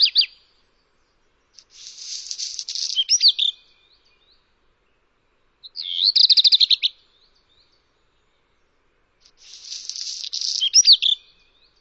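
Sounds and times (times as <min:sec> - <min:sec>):
bird song of rapid trills and scratchy twittering: 0:00.0 - 0:11.7.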